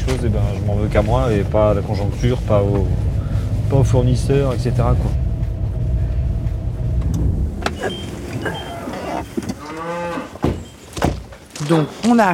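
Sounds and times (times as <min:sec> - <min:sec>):
low engine-like rumble: 0:00.0 - 0:10.0
speech: 0:00.2 - 0:03.1, 0:03.7 - 0:05.2, 0:07.8 - 0:08.6, 0:11.7 - 0:12.3
cow mooing outdoors on a cold day: 0:07.7 - 0:10.4.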